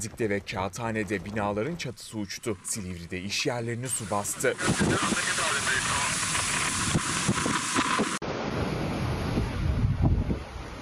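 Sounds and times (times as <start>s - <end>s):
speech: 0.0s - 6.2s
sea waves whipped up by strong wind in Istanbul: 2.2s - 10.7s
strong wind over the sea in Istanbul: 3.9s - 10.7s.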